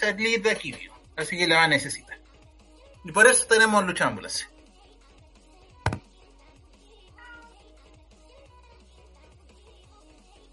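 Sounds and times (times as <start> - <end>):
speech: 0.0 - 2.2, 3.0 - 4.5
cat meowing: 7.1 - 7.6.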